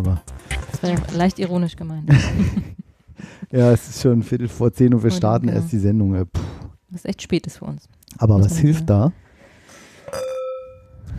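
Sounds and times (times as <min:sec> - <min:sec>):
speech: 0:00.0 - 0:09.2
laughter: 0:02.1 - 0:02.8
two empty wine glasses clinking: 0:10.1 - 0:11.0.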